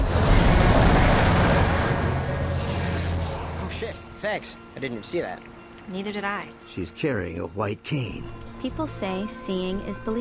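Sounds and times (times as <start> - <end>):
large city bus roaring past on a busy city street: 0.0 - 4.0
speech: 4.2 - 10.2.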